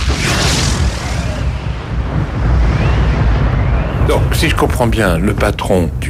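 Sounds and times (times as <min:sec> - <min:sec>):
loud deep explosion sound effect with rumbling roar: 0:00.0 - 0:04.6
speech: 0:04.1 - 0:06.0.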